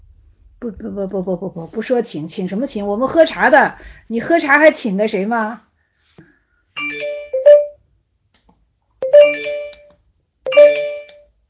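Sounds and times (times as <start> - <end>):
speech: 0.6 - 5.7
phone messaging app ringtone playing a bright bell-like chiming melody: 6.8 - 7.8, 9.0 - 9.9, 10.5 - 11.4.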